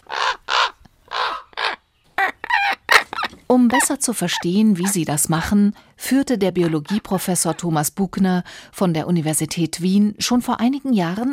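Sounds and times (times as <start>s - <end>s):
common raven croaking: 0.0s - 5.5s
speech: 3.5s - 11.3s.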